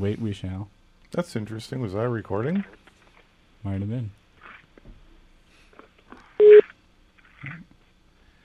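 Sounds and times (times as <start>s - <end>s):
speech: 0.0s - 2.8s, 3.6s - 4.2s
telephone ringback tone over the line: 6.4s - 6.6s.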